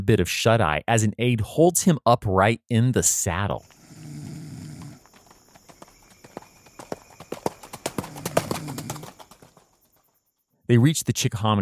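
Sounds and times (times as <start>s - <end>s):
speech: 0.0s - 4.2s, 10.7s - 11.5s
hooves of several ridden horses clip-clopping on a road: 3.6s - 10.4s.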